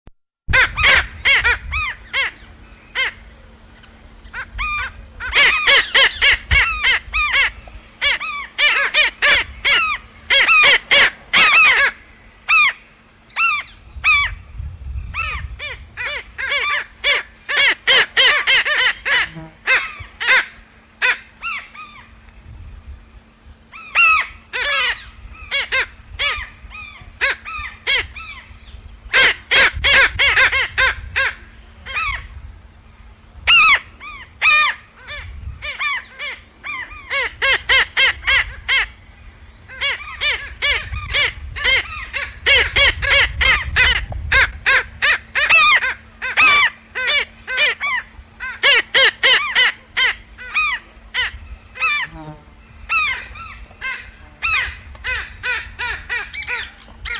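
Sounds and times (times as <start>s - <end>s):
Black Skimmer Rynchops niger calls: 0.5s - 14.4s, 15.1s - 22.2s, 23.6s - 32.4s, 33.5s - 57.1s.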